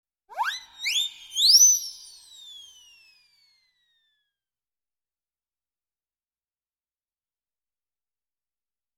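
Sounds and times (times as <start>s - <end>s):
funny cartoon flying sound effect: 0.3s - 3.6s.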